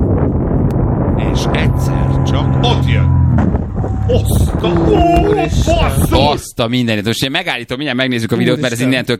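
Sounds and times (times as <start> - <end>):
wind buffeting microphone: 0.0 - 6.6
faint humming tone: 1.1 - 5.2
speech: 1.4 - 3.1, 4.1 - 9.1.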